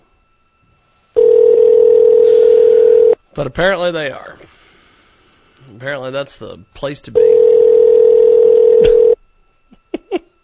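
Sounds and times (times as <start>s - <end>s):
outgoing phone call ringing tone: 1.2s - 3.2s, 7.2s - 9.2s
speech: 3.4s - 4.3s, 5.7s - 7.4s.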